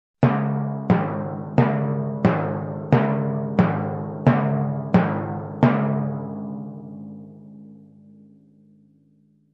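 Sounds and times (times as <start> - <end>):
timpani groove: 0.2 - 7.0.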